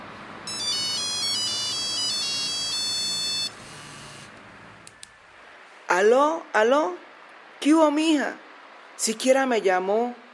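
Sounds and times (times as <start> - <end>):
faint steady hiss: 0.0 - 10.3
telephone melodic electronic ringtone: 0.5 - 4.3
speech: 6.0 - 7.0, 7.6 - 8.4, 9.0 - 10.2.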